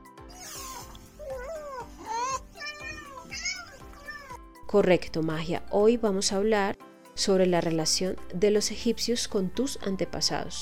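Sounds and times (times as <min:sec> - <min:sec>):
cat meowing for salmon treats: 0:00.3 - 0:04.4
speech: 0:04.7 - 0:10.6.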